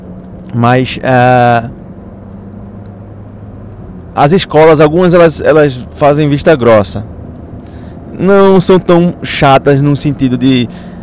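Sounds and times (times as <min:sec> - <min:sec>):
car road noise inside a moving vehicle: 0:00.0 - 0:11.0
speech: 0:00.4 - 0:01.8, 0:04.2 - 0:07.2, 0:08.2 - 0:10.9.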